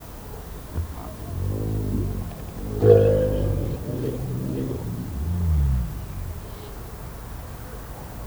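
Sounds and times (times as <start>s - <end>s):
one-humped camel at Nyíregyháza zoo: 0.0s - 8.2s.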